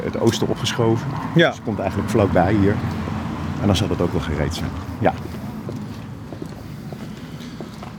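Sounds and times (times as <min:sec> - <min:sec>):
speech: 0:00.2 - 0:03.0, 0:03.6 - 0:05.4
footsteps walking outdoors at a brisk pace: 0:04.7 - 0:07.9.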